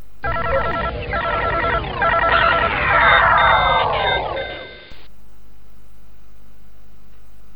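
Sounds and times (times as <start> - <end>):
electronic computer game beeps and chirps: 0.2 - 5.1.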